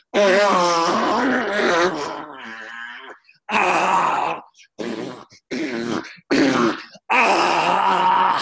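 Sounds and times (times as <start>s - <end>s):
long moaning, groaning vocal sound played from a cassette in a car: 0.0s - 8.4s.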